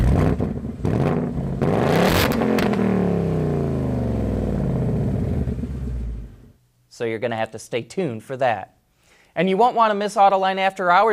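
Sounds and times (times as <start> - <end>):
powerful V8 engine revving and idling: 0.0 - 6.5
speech: 7.0 - 8.8, 9.4 - 11.1.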